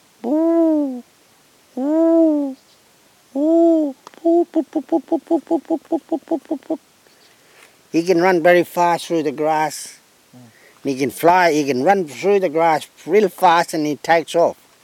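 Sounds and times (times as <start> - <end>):
person imitating pheasant coucal hooting call: 0.2 - 1.1, 1.7 - 2.6, 3.3 - 6.9
speech: 4.5 - 6.9, 7.9 - 14.6.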